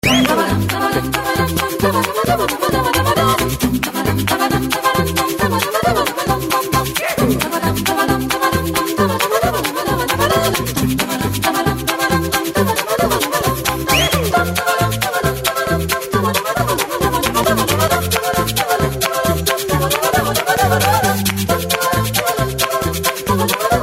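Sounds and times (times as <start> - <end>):
a cappella polka ringtone singing: 0.0 - 23.8.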